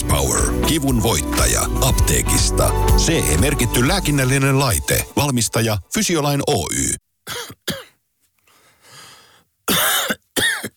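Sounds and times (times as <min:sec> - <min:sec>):
speech: 0:00.7 - 0:07.8
raspy throat clearing: 0:07.2 - 0:08.0, 0:09.7 - 0:10.7
person coughing: 0:07.3 - 0:08.0, 0:09.7 - 0:10.7.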